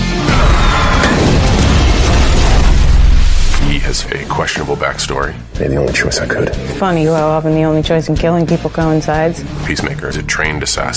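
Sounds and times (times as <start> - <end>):
explosion of a grenade tied to a Russian tank shell: 0.3 - 3.6
speech: 3.9 - 10.9.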